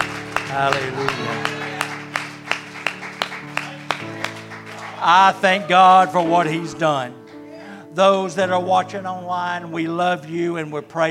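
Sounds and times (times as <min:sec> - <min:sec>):
audience clapping in unison in worship: 0:00.0 - 0:07.5
sustained organ or keyboard chords: 0:00.0 - 0:11.0
speech: 0:00.5 - 0:01.7, 0:05.0 - 0:07.2, 0:08.0 - 0:11.0.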